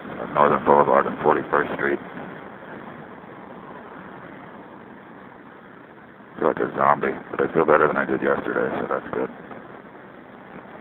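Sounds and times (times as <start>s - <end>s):
street traffic roar of passing cars: 0.0s - 10.7s
speech: 0.4s - 2.2s, 6.4s - 9.6s.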